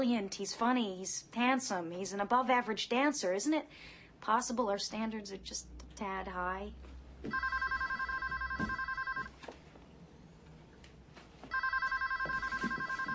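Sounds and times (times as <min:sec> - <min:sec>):
speech: 0:00.0 - 0:07.7, 0:08.6 - 0:08.8
telephone ringing with electronic trilling tone: 0:07.3 - 0:09.4, 0:11.5 - 0:13.1.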